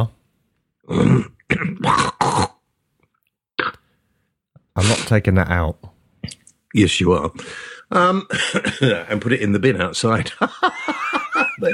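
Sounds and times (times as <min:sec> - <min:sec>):
speech: 0:00.9 - 0:02.4, 0:04.8 - 0:11.7
person with a cold clearing throat: 0:00.9 - 0:02.6
person with a cold hacking: 0:00.9 - 0:02.6
laughter: 0:10.2 - 0:11.7.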